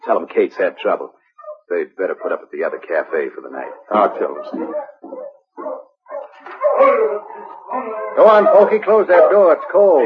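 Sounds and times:
speech: 0.1s - 5.3s, 7.8s - 10.0s
sled dog team barking and yipping: 0.6s - 10.0s.

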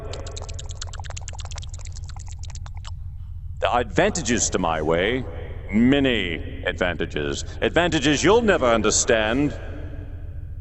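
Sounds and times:
noisy sloppy drinking with liquid pouring into a mouth: 0.0s - 2.9s
steady low rumble: 0.0s - 10.6s
speech: 3.7s - 9.7s.

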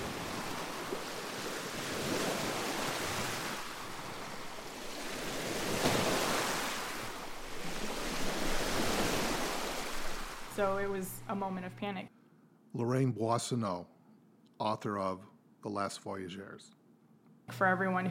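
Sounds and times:
heavy ocean surf with waves over 10 feet high crashing on shore: 0.0s - 11.4s
speech: 10.6s - 13.9s, 14.6s - 16.8s, 17.5s - 18.0s.

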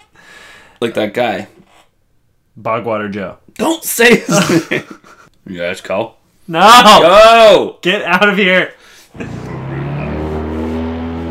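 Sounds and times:
speech: 0.8s - 1.7s, 2.6s - 9.4s
fan boat engine roaring as the boat takes off: 9.2s - 11.3s.

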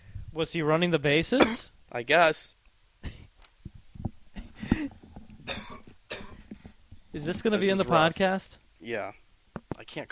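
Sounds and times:
speech: 0.4s - 2.6s, 7.2s - 9.2s, 9.9s - 10.1s
harsh coughs and throat-clearing from one person: 1.4s - 1.7s, 5.5s - 6.4s.

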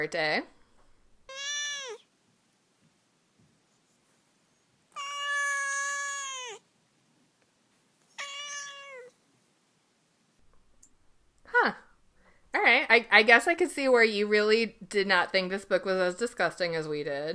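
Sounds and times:
speech: 0.0s - 0.6s, 12.9s - 17.3s
cat meowing: 1.3s - 2.1s, 5.0s - 6.6s, 8.2s - 9.1s.

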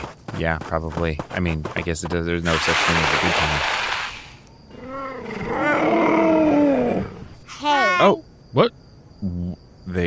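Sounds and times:
speech: 0.4s - 3.9s, 8.0s - 8.8s
cheetah growling: 4.7s - 7.4s.

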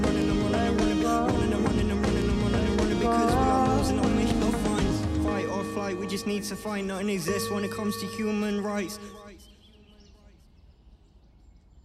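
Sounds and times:
piece of music: 0.0s - 9.3s
faint birdsong: 5.4s - 11.8s
speech: 6.1s - 9.2s.

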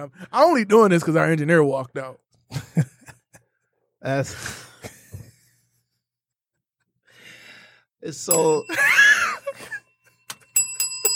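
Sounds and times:
speech: 0.0s - 2.9s, 4.0s - 4.7s, 8.0s - 8.9s
bell strikes: 8.3s - 11.1s.

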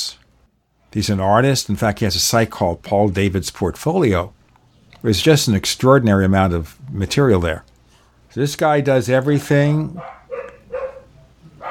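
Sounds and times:
speech: 0.9s - 4.4s, 5.0s - 7.7s, 8.4s - 10.2s
dog barking: 10.0s - 11.6s.

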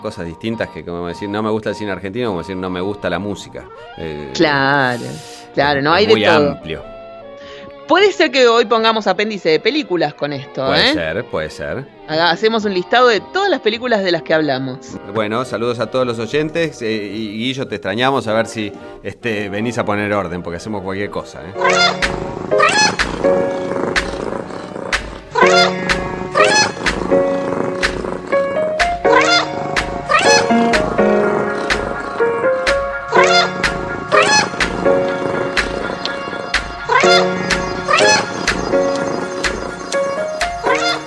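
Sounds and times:
speech: 0.0s - 6.9s, 7.9s - 23.6s
bouncy musical backing: 5.6s - 7.0s, 10.7s - 11.3s, 21.5s - 41.0s
rhythmic cat meows: 21.6s - 28.4s, 29.0s - 30.7s, 33.1s - 34.6s, 35.2s - 38.5s.

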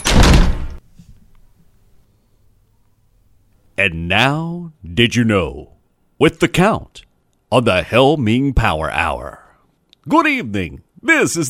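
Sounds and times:
house front door slamming shut: 0.0s - 0.8s
speech: 3.8s - 9.4s, 10.1s - 11.4s.

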